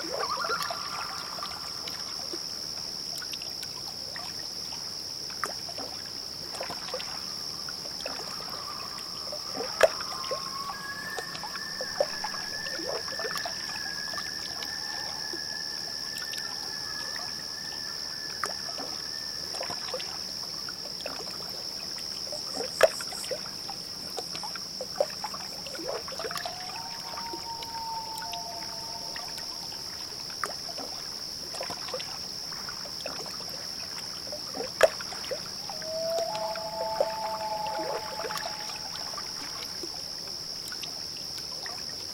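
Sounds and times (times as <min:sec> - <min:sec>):
loons calling across a still lake at night: 0:00.0 - 0:01.8, 0:08.0 - 0:20.3, 0:26.2 - 0:30.2, 0:35.6 - 0:39.7
soft water lapping on a lake: 0:00.0 - 0:41.9
steady high insect chorus: 0:00.0 - 0:42.1.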